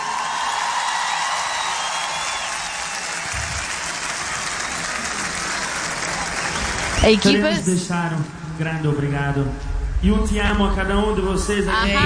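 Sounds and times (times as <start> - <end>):
large festival audience applauding the team and musicians: 0.0 - 7.7
speech: 7.0 - 12.0.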